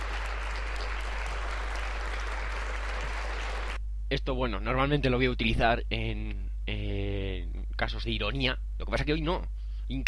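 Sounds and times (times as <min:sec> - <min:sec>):
applause sound effect of many hands clapping: 0:00.0 - 0:03.8
speech: 0:04.1 - 0:07.2, 0:07.8 - 0:10.0.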